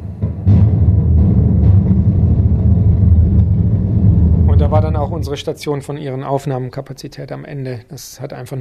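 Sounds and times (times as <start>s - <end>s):
deep underwater rumble of two icebergs colliding, hydrophone recording: 0.6s - 5.8s
speech: 5.2s - 8.5s.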